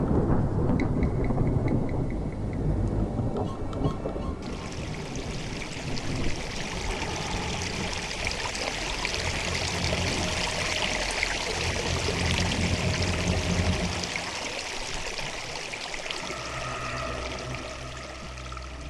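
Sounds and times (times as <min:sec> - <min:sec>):
deep thunder-like rumble from deep in the earth: 0:00.0 - 0:14.8, 0:16.0 - 0:18.8
water welling up and gushing to the rim of a well at Fleckenstein castle: 0:04.4 - 0:18.8.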